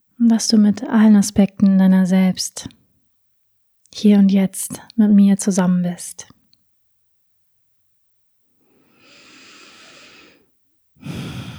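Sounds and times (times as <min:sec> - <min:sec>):
speech: 0:00.2 - 0:02.8, 0:03.9 - 0:06.4
deep breathing during a guided relaxation exercise: 0:08.7 - 0:11.5.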